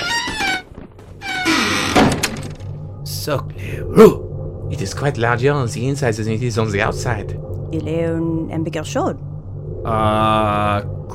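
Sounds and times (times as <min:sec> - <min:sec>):
door of a large blue box creaking on its hinges: 0:00.0 - 0:02.7
speech: 0:03.2 - 0:11.0.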